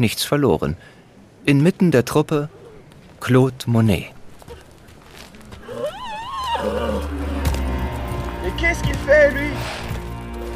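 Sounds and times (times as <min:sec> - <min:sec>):
speech: 0:00.0 - 0:02.6, 0:03.2 - 0:04.2, 0:08.6 - 0:09.8
riding horse hooves scuffling: 0:02.5 - 0:10.5
riding horse whinnying: 0:05.6 - 0:08.0.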